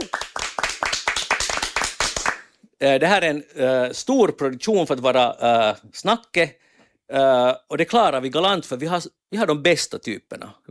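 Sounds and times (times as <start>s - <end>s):
group applause for a technician at a live music production: 0.0s - 2.5s
speech: 2.8s - 10.7s.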